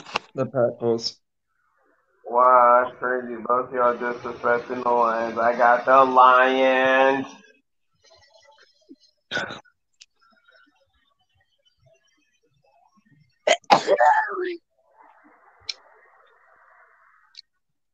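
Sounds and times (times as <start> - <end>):
speech: 0.4 - 1.2, 2.3 - 7.4, 9.3 - 9.6, 14.0 - 14.6
person sneezing: 13.5 - 14.6.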